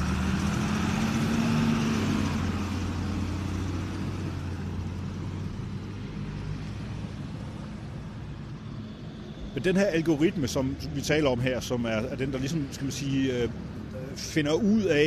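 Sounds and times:
vehicle engine rising in pitch: 0.0s - 5.0s
busy road traffic with cars and heavier vehicles passing: 0.0s - 15.0s
speech: 9.6s - 15.0s.

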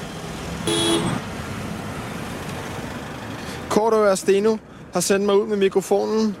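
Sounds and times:
traffic rumble on a congested Copenhagen street: 0.0s - 6.3s
short bright car horn toot: 0.6s - 1.2s
speech: 3.8s - 6.3s.

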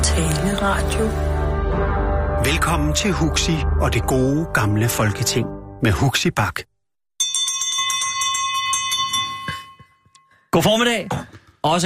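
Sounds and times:
speech: 0.1s - 6.7s, 10.5s - 11.8s
bell rung to open a parliamentary session: 7.2s - 10.5s.

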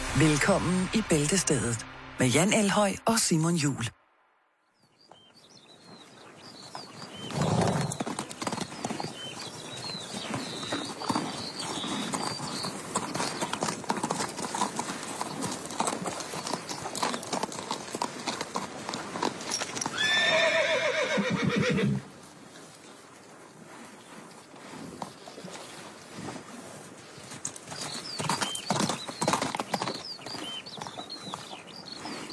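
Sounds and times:
speech: 0.2s - 4.0s
horse hooves clip-clopping: 5.0s - 21.1s, 22.0s - 32.3s
horse letting out a loud shrill neigh: 19.8s - 22.1s.

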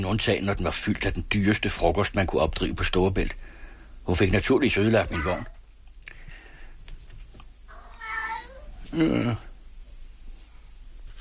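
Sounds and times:
speech: 0.0s - 5.6s, 8.9s - 9.5s
cat meowing: 5.0s - 5.6s, 7.7s - 9.0s.

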